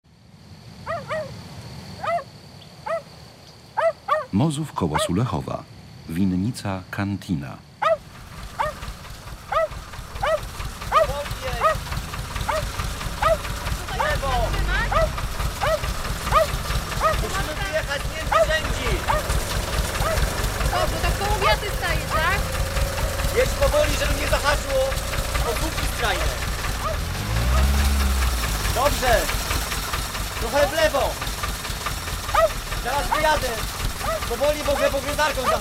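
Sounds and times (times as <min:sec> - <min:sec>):
speech: 0:04.3 - 0:07.7
tractor engine idling at a vineyard near Sulechów, Poland: 0:08.0 - 0:35.5.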